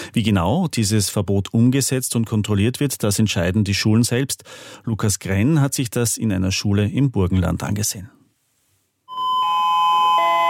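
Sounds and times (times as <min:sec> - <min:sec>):
speech: 0:00.2 - 0:08.2
Gymnasium school bell electronic chime before the first lesson: 0:09.1 - 0:10.4.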